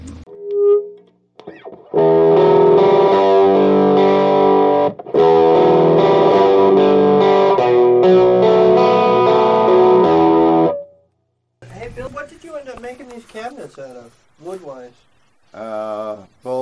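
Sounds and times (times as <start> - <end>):
distorted electric guitar through an amplifier with tremolo and spring reverb: 0.0 - 11.0.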